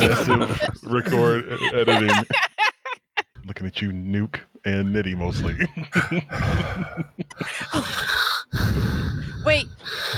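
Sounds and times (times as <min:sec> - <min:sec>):
speech: 0:00.0 - 0:02.5, 0:03.6 - 0:10.1
laughter: 0:00.0 - 0:03.3, 0:05.5 - 0:08.0
heavy breathing into a microphone: 0:06.3 - 0:10.1.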